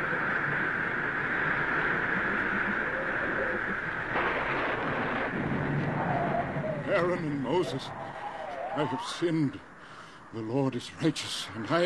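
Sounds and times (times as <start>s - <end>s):
low rumbling thunder in Egypt: 0.0s - 9.0s
heavy hail and rain pelting in Egypt: 2.8s - 6.6s
sharper surge of crashing sound: 4.1s - 6.7s
speech: 7.0s - 8.2s, 8.8s - 9.7s, 10.3s - 11.8s.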